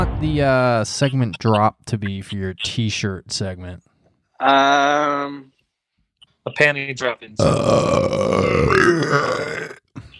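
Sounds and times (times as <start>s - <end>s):
speech: 0.2s - 5.5s, 6.4s - 9.3s
long loud gravelly burp: 7.4s - 9.9s.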